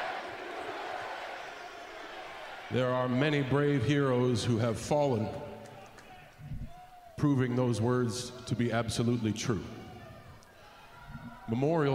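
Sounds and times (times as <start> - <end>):
large crowd chanting in unison: 0.0 - 3.5
speech: 2.7 - 5.5, 7.2 - 9.8, 11.5 - 11.9.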